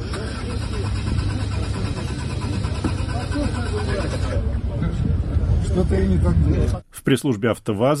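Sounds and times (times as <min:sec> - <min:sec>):
Lada Aura prototype car engine cranking without catching: 0:00.0 - 0:04.4
voices murmuring: 0:00.0 - 0:07.0
speech: 0:05.8 - 0:07.9.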